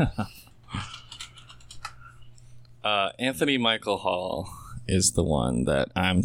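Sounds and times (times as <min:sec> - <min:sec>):
speech: 0:00.0 - 0:00.9, 0:02.8 - 0:06.2
typing on a computer keyboard: 0:00.8 - 0:02.0.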